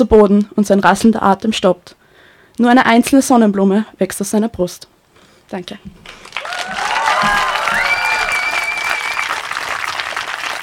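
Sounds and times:
speech: 0.0s - 2.0s, 2.6s - 4.9s, 5.5s - 6.3s
audience applause: 6.0s - 10.6s
whoops and cheers: 6.4s - 9.6s.

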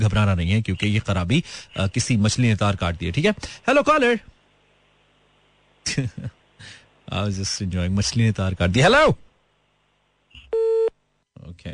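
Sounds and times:
speech: 0.0s - 4.3s, 5.8s - 9.2s, 11.4s - 11.7s
laughter: 5.9s - 6.4s
electronic phone-line tone of a failed phone call: 10.4s - 11.0s.

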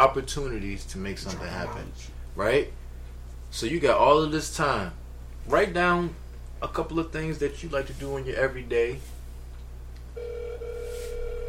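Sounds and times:
speech: 0.0s - 2.8s, 3.5s - 9.2s
low constant hum: 0.0s - 11.4s
telephone ringback tone on an outgoing call: 10.2s - 11.4s.

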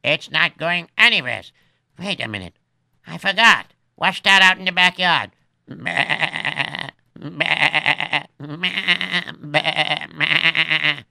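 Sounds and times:
speech: 0.0s - 6.4s, 7.2s - 11.0s
goats bleating: 5.8s - 11.0s.

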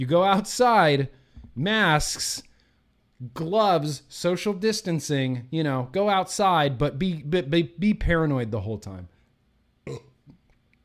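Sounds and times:
speech: 0.0s - 2.5s, 3.2s - 9.1s, 9.8s - 10.1s
throaty burp: 9.8s - 10.4s
faint clicks and mouth sounds: 10.2s - 10.8s.

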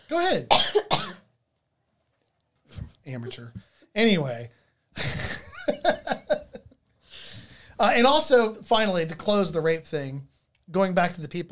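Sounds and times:
speech: 0.1s - 0.8s, 3.1s - 6.1s, 7.8s - 11.4s
woman coughing: 0.5s - 1.2s
laughter: 5.0s - 6.8s.

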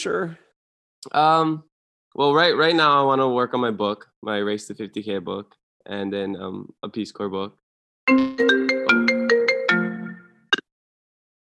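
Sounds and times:
speech: 0.0s - 8.8s
mobile phone ringtone from incoming call: 8.1s - 10.5s.

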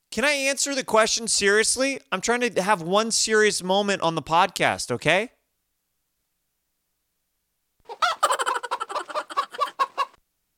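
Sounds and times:
speech: 0.2s - 5.4s
chicken and chipmunk laughing sound effect: 7.9s - 10.2s.

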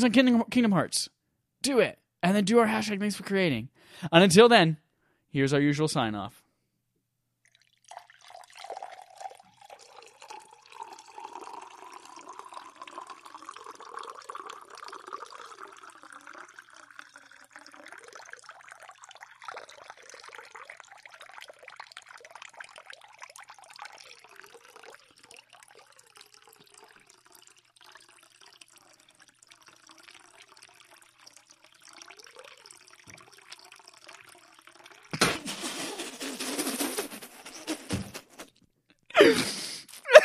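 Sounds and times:
speech: 0.0s - 6.4s
water pouring into a container: 7.4s - 37.8s.

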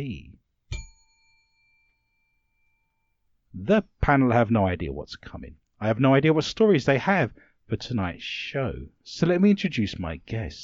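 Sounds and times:
speech: 0.0s - 0.3s, 3.6s - 10.6s
bell rung as a warning to control a panel of guests: 0.7s - 3.2s.

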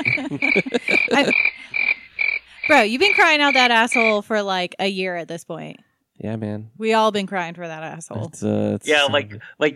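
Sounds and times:
speech: 0.0s - 1.4s, 2.7s - 9.7s
laughter: 0.0s - 1.8s, 8.9s - 9.4s
crickets chirping: 0.0s - 4.2s
chorus of frogs croaking at night: 0.0s - 4.3s.

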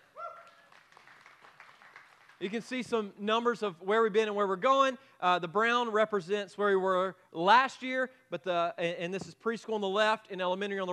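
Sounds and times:
vocal cheer or whoop: 0.0s - 0.7s
crowd applauding: 0.3s - 2.7s
speech: 2.4s - 10.9s.

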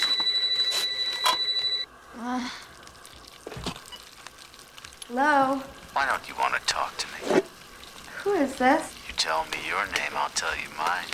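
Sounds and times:
telephone ringing in a home at night: 0.0s - 1.9s
faint sizzling crackle: 0.0s - 11.1s
speech: 2.4s - 2.7s, 5.1s - 7.5s, 8.2s - 11.1s.

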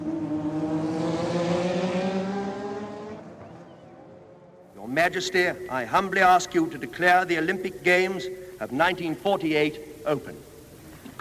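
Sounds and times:
race car engines roaring with a high strained whine: 0.0s - 6.0s
speech: 5.0s - 10.5s.

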